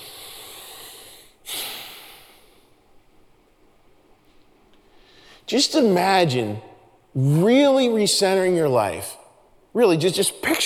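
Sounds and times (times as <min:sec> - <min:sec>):
people breathing in together at a Christmas church gathering: 0:00.0 - 0:02.8
hiss: 0:00.0 - 0:10.6
speech: 0:05.5 - 0:09.2, 0:09.8 - 0:10.6.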